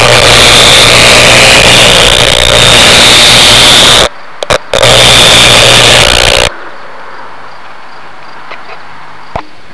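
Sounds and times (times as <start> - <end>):
powerline RFI noise recorded through M330 locator speaker: 0.0 - 9.7.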